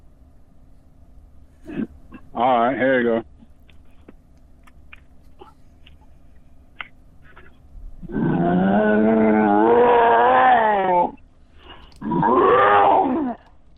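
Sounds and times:
speech: 0:02.4 - 0:03.3
person voicing a deep growling roar imitating an angry shark: 0:08.0 - 0:11.2, 0:12.0 - 0:13.5.

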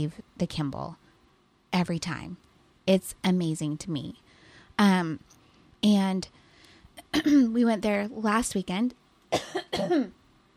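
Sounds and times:
speech: 0:00.0 - 0:01.0, 0:01.7 - 0:04.2, 0:04.8 - 0:06.4, 0:07.0 - 0:10.2
person coughing from allergy: 0:07.1 - 0:07.4, 0:09.4 - 0:10.2.

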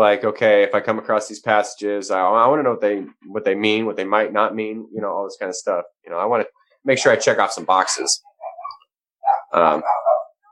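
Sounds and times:
speech: 0:00.0 - 0:08.3, 0:09.5 - 0:10.1
dog barking frantically: 0:08.3 - 0:10.4.

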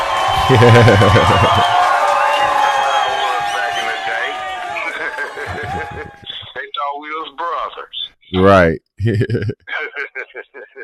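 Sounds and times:
small group of people cheering and whooping: 0:00.0 - 0:06.4
voices shouting: 0:00.0 - 0:06.4
noisy crowded background: 0:00.0 - 0:06.6
laughter: 0:00.3 - 0:02.0, 0:03.2 - 0:06.5, 0:09.0 - 0:10.8
speech: 0:00.5 - 0:01.8, 0:08.3 - 0:10.5.

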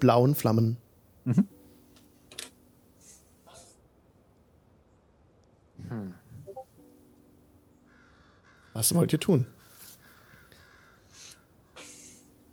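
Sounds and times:
speech: 0:00.0 - 0:01.6, 0:05.9 - 0:06.2, 0:08.8 - 0:09.6
crows cawing in tree branches: 0:07.8 - 0:11.8.

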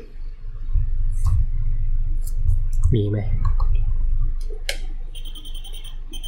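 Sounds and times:
steady low hum: 0:00.0 - 0:06.2
speech: 0:02.9 - 0:03.5
EMF meter beeping and chirping over a laptop: 0:05.1 - 0:06.2.

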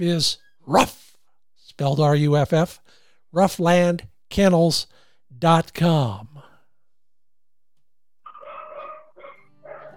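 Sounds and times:
speech: 0:00.0 - 0:01.1, 0:01.8 - 0:06.4
dog barking with harmonic drawn-out woofs: 0:08.3 - 0:09.9.

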